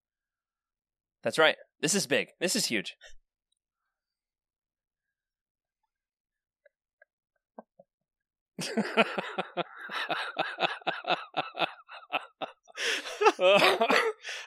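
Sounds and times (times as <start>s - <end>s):
speech: 1.2s - 3.2s, 8.6s - 12.2s, 12.8s - 14.4s
laughter: 8.6s - 14.4s
loud cough at the microphone: 13.2s - 14.4s.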